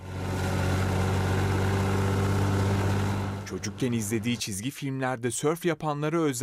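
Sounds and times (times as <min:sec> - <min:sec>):
tractor engine idling: 0:00.0 - 0:04.4
speech: 0:03.5 - 0:06.4.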